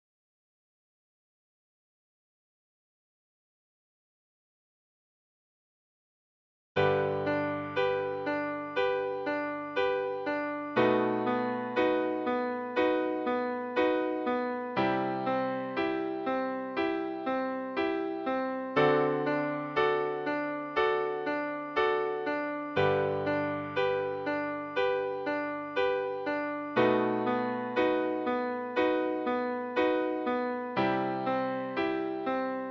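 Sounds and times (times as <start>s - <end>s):
solo piano practice: 6.8s - 32.6s.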